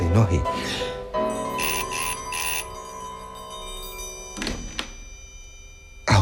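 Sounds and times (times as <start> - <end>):
speech: 0.2 - 0.8
doorbell ringing: 1.4 - 6.1.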